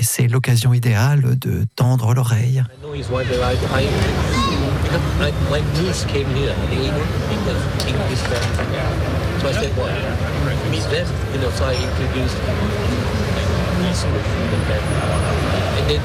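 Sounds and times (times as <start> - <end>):
speech: 0.2 - 13.2, 13.8 - 16.0
low rumble of traffic: 2.7 - 16.0
crowd chatter in a city square: 2.8 - 16.0
clinks and clatters: 7.8 - 8.8.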